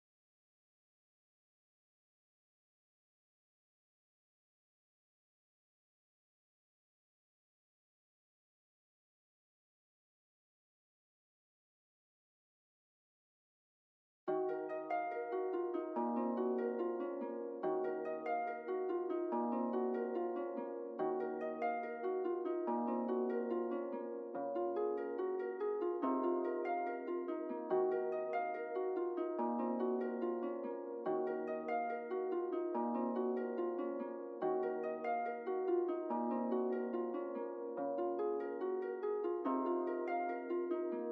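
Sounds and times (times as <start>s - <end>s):
harp melody loop in A sharp minor: 14.3s - 41.0s.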